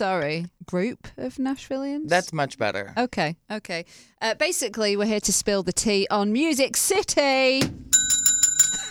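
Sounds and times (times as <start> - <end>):
speech: 0.0 - 8.2
bell ringing in bright metallic dings: 7.9 - 8.9.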